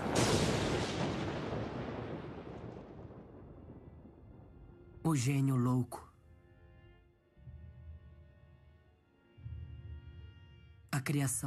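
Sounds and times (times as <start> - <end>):
sharp crackling thunderclap with rumbling decay: 0.0 - 5.1
speech: 5.1 - 6.1, 11.1 - 11.4.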